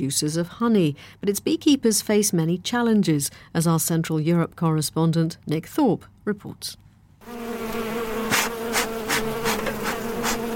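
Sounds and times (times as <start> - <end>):
speech: 0.0 - 7.4
bees buzzing around beehives in a Transylvanian village: 7.2 - 10.5.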